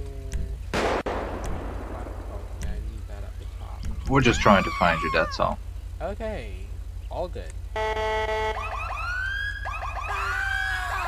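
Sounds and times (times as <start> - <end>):
steady low rumble: 0.0 - 7.8
several police sirens wailing and whooping: 1.9 - 5.7, 7.7 - 11.0
speech: 4.1 - 8.7.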